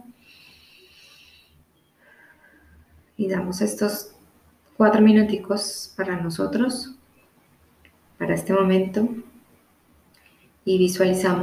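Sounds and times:
slow deep breath with airy inhale and breathy exhale: 0.1s - 2.9s
speech: 3.2s - 4.2s, 4.8s - 7.0s, 8.2s - 9.3s, 10.6s - 11.4s.

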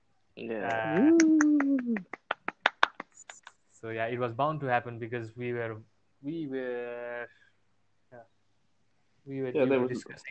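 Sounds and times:
speech: 0.4s - 2.2s, 3.8s - 7.4s, 9.2s - 10.3s
hands clapping in applause: 0.6s - 3.6s
drawn-out vocal whoop: 0.7s - 2.1s.

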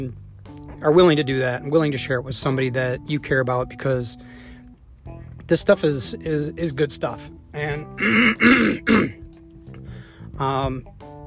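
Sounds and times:
speech: 0.0s - 0.2s, 0.8s - 4.5s, 5.1s - 9.2s, 10.4s - 11.0s
person clearing throat with harsh raspy bursts: 8.0s - 9.2s.

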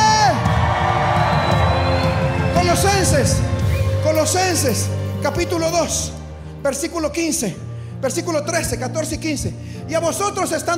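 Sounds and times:
church congregation shouting and cheering: 0.0s - 5.7s
speech: 2.8s - 3.6s, 4.2s - 10.7s.

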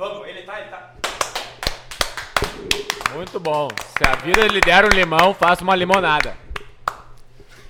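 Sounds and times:
people clapping in a steady rhythm: 1.0s - 7.1s
speech: 3.1s - 6.4s.

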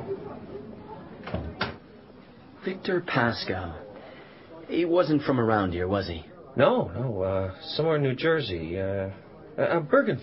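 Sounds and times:
door pushed shut with a soft bump and firmer thud: 1.2s - 1.8s
speech: 2.6s - 3.9s, 4.7s - 10.2s.

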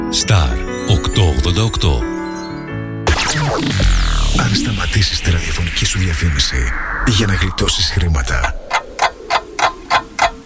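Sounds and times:
speech: 0.1s - 2.1s, 3.5s - 8.8s
clock ticking: 8.4s - 10.4s.

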